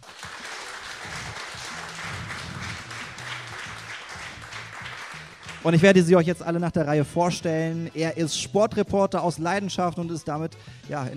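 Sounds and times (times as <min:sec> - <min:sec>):
room full of people applauding: 0:00.0 - 0:05.7
speech: 0:05.6 - 0:11.1.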